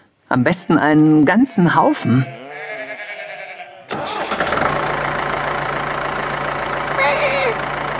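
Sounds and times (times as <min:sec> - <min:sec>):
speech: 0:00.3 - 0:02.7
baby lamb bleating in protest: 0:01.3 - 0:04.4, 0:07.0 - 0:07.6
tractor engine starting up and rumbling: 0:03.9 - 0:07.9.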